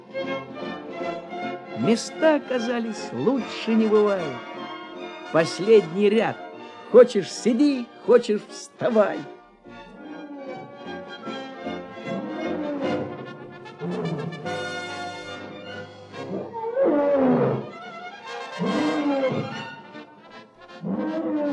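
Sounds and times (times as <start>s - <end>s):
speech: 1.8s - 4.5s, 5.3s - 9.4s
Atlas lions roaring: 9.9s - 14.9s, 16.0s - 17.8s, 18.4s - 20.0s, 20.8s - 21.5s.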